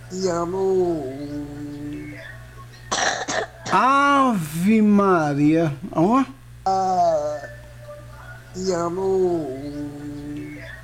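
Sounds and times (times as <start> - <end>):
low droning hum: 0.0 - 10.8
speech: 0.1 - 1.9, 3.4 - 7.5, 8.6 - 10.2
sharp loud raspy coughs: 2.9 - 3.9.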